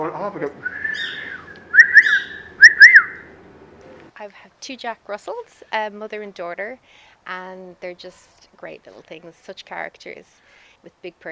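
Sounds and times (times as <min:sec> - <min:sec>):
speech: 0:00.3 - 0:01.1, 0:04.2 - 0:11.3
pet bird wolf whistling: 0:00.6 - 0:03.3.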